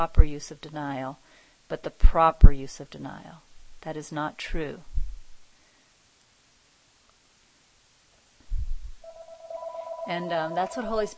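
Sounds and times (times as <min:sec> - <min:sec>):
speech: 0:00.0 - 0:04.9, 0:10.1 - 0:11.1
faint hiss: 0:00.0 - 0:11.1
telephone ringing with steady electronic tone: 0:09.0 - 0:11.1.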